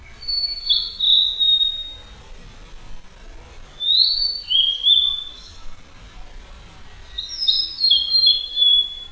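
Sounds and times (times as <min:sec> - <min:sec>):
blue-and-white flycatcher singing: 0:00.0 - 0:02.1, 0:03.8 - 0:05.6, 0:07.1 - 0:09.0.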